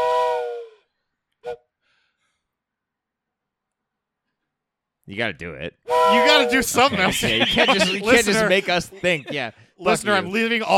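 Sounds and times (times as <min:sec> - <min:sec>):
whistle blowing: 0:00.0 - 0:01.6, 0:05.9 - 0:06.9
speech: 0:05.1 - 0:10.7
laughter: 0:06.3 - 0:10.7.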